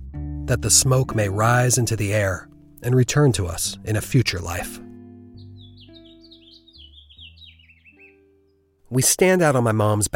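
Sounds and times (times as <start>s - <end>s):
speech: 0.5s - 4.9s, 8.9s - 10.1s
birds chirping in a backyard: 1.4s - 8.8s.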